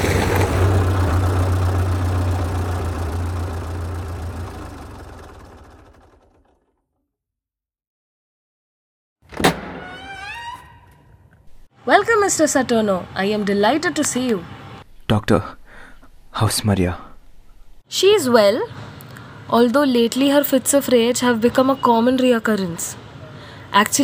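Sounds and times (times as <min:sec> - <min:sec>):
car engine running while being driven: 0:00.1 - 0:06.7
speech: 0:11.9 - 0:15.6, 0:16.4 - 0:17.0, 0:17.9 - 0:18.8, 0:19.5 - 0:23.0, 0:23.7 - 0:23.9.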